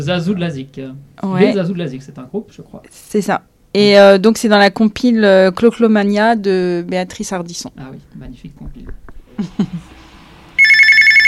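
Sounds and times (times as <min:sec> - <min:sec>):
speech: 0:00.0 - 0:09.9
telephone bell ringing: 0:10.6 - 0:11.2.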